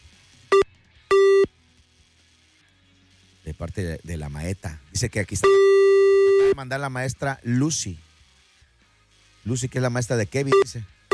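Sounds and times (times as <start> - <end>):
telephone busy signal after dialing a number: 1.1 - 1.5, 5.4 - 6.6, 10.5 - 11.1
speech: 3.5 - 5.8, 6.6 - 8.0, 9.4 - 10.9.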